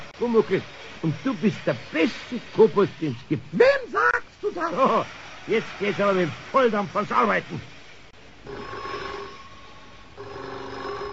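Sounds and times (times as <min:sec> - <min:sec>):
speech: 0:00.2 - 0:07.7
telephone ringing with a bright electronic trill: 0:08.4 - 0:11.1.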